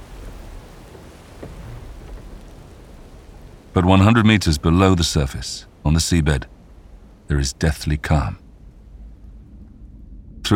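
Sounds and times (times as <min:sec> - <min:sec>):
heavy driving rain in a gale-force storm over the North Sea: 0:00.0 - 0:09.7
speech: 0:03.8 - 0:06.6, 0:07.3 - 0:08.4.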